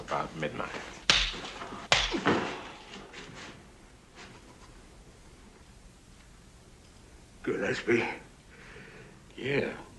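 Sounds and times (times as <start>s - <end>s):
speech: 0.1s - 1.0s, 7.6s - 8.2s, 9.4s - 9.8s
slaps across the face: 1.0s - 2.6s.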